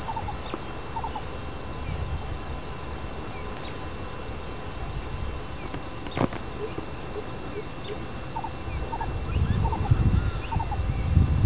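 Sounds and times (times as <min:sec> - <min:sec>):
coucal calling: 0:00.0 - 0:01.3, 0:06.5 - 0:10.8
low rumble of noise: 0:00.0 - 0:11.4.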